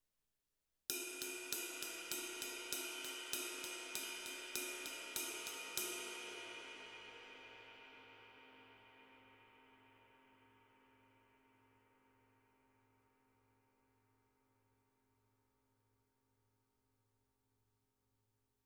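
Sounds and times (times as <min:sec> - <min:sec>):
ride cymbal in rock style: 0:01.0 - 0:07.3.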